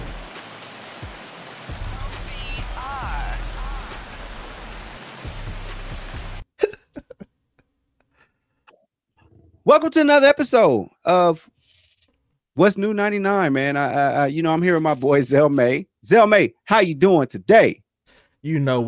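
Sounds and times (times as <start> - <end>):
steady rain pouring down: 0.0 - 6.4
speech: 9.7 - 11.6, 12.6 - 17.8, 18.4 - 18.8.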